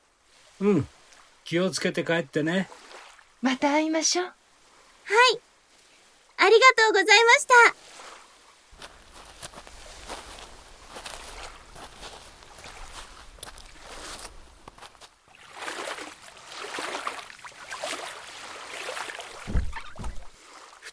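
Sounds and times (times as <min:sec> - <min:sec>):
speech: 0:00.6 - 0:04.4, 0:05.1 - 0:05.5, 0:06.4 - 0:08.0
oars rowing a small boat on water from a beach: 0:02.7 - 0:03.4, 0:07.8 - 0:20.8
heavier knocks against the boat: 0:19.4 - 0:20.3.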